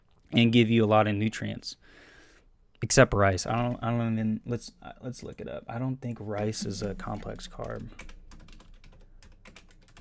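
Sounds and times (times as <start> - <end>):
speech: 0.3 - 2.0, 2.8 - 8.2
typing on a computer keyboard: 6.4 - 9.9.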